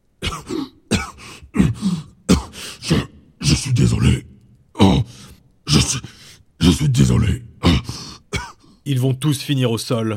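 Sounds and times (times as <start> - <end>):
person coughing violently: 0.2 - 3.6, 8.3 - 8.7
speech: 6.7 - 7.8, 8.8 - 10.1.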